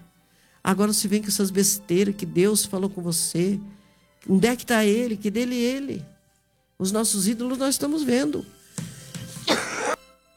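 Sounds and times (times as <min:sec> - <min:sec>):
speech: 0:00.6 - 0:06.1, 0:06.8 - 0:08.6
man coughing during a sermon: 0:09.4 - 0:10.0.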